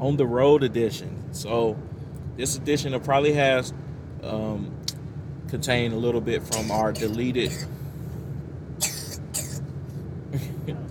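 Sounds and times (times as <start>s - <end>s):
speech: 0.0s - 4.8s, 5.5s - 7.8s
steady low rumble of traffic: 0.0s - 10.9s
child coughing in short harsh bursts: 6.5s - 7.8s, 8.8s - 9.6s.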